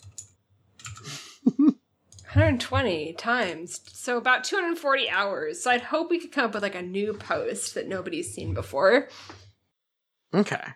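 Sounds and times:
typing on a computer keyboard without number keys: 0.0 - 1.1
speech: 2.4 - 9.4, 10.3 - 10.7.

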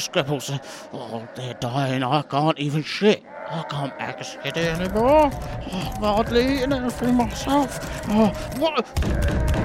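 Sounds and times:
speech: 0.0 - 9.6
people banging on a door: 4.8 - 9.6.

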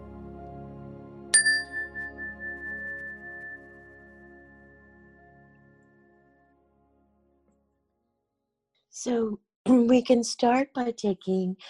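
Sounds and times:
meditation chime ringing: 1.4 - 5.2
speech: 9.0 - 11.6.

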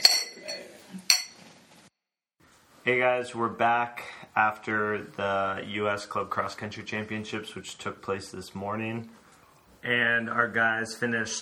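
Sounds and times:
glasses clinking in a toast: 0.0 - 1.5
speech: 2.8 - 9.2, 9.8 - 11.4.

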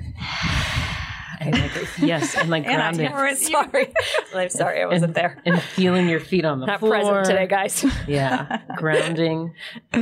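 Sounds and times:
deep conscious breath drawn in: 0.0 - 1.4
speech: 1.4 - 10.0
laughter: 1.5 - 6.4, 7.8 - 9.3.

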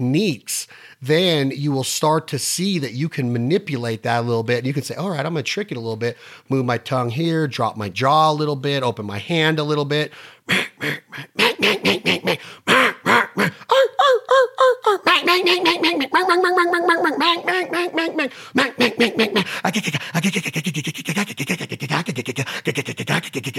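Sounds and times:
speech: 0.0 - 23.5
person imitating mallard duck quacks: 10.5 - 23.5.

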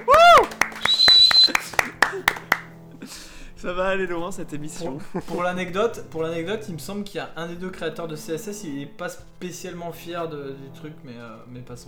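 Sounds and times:
single person clapping hands: 0.0 - 2.8
laughter: 0.0 - 3.3, 4.5 - 6.3
speech: 3.6 - 11.8.

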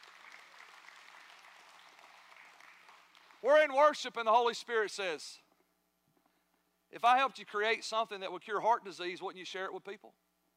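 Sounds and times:
church audience applause: 0.0 - 3.4
speech: 3.4 - 5.4, 6.9 - 10.2.

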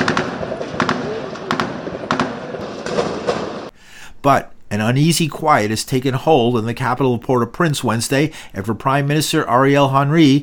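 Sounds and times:
gunfire in the streets: 0.0 - 3.7
outdoor noise: 0.0 - 3.8
speech: 4.2 - 10.4.

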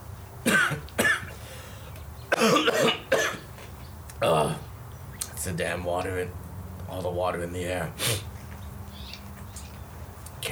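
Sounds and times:
pale skinny malnourished man coughing: 0.4 - 1.3, 2.3 - 3.4
speech: 5.5 - 8.3.

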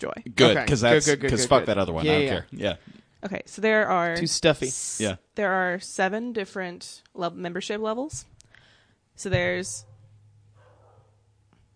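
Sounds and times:
speech: 0.0 - 8.3, 9.2 - 9.9
steady low electrical hum: 0.4 - 11.7
dog barking muffled through walls in a building: 9.8 - 11.3.

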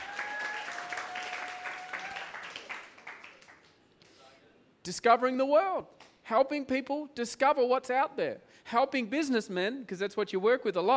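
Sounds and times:
audience clapping: 0.0 - 3.8
speech: 4.8 - 10.9.

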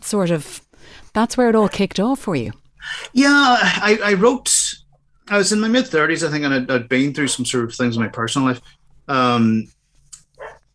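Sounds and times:
speech: 0.1 - 4.7, 5.3 - 9.8
pet dog barking: 10.4 - 10.7.

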